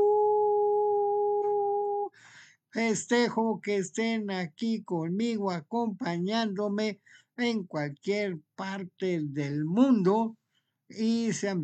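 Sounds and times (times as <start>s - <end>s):
person imitating a howl in celebration: 0.0s - 2.1s
speech: 2.8s - 11.6s.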